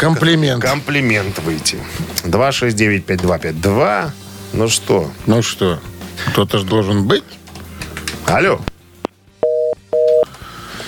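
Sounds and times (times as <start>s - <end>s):
speech: 0.0s - 7.4s, 8.2s - 8.7s
telephone busy tone beeps after a dropped call: 9.4s - 10.3s.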